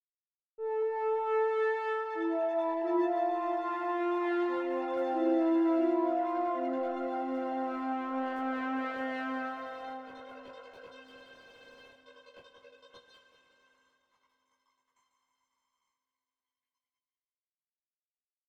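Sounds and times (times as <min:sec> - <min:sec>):
grainspace synthesizer: 0:00.6 - 0:11.6.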